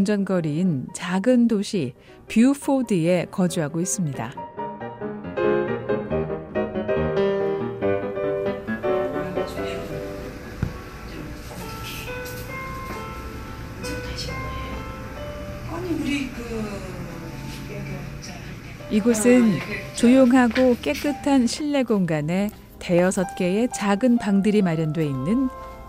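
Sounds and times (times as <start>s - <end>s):
speech: 0.0s - 4.4s, 18.9s - 25.8s
gentle melodic music in a spa treatment room: 0.0s - 25.8s.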